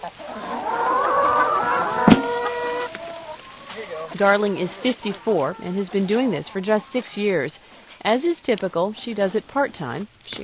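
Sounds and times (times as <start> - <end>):
speech: 0.0 - 0.8, 4.1 - 10.4
turkeys calling in a farmyard: 0.0 - 7.9
hens calling in a farmyard: 0.0 - 10.1.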